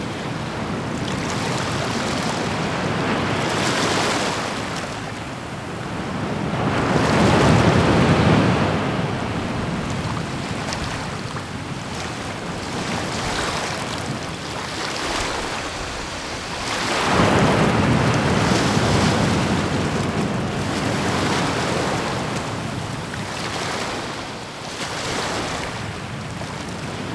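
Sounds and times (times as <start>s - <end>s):
ocean: 0.0s - 27.1s.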